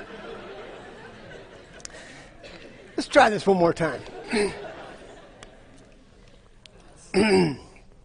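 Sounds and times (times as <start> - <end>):
laughter: 0.0 - 7.1
speech: 3.0 - 4.6, 7.2 - 7.6
loud rough throat clearing after choking on a drink: 7.1 - 7.8.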